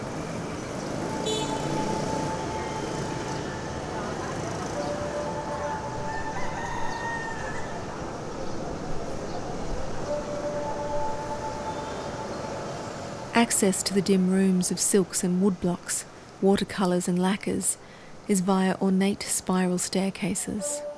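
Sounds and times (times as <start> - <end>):
city street traffic rumble through shuttered balconies of a villa: 0.0 - 20.9
faint drawn-out horn or siren-like tones: 0.7 - 7.9, 10.0 - 13.4, 20.7 - 20.9
speech: 13.4 - 20.9.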